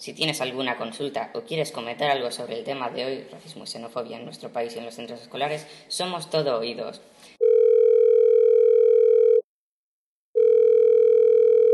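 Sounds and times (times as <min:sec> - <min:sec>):
speech: 0:00.0 - 0:07.1
telephone ringing with an incoming call: 0:07.4 - 0:09.4, 0:10.4 - 0:11.7.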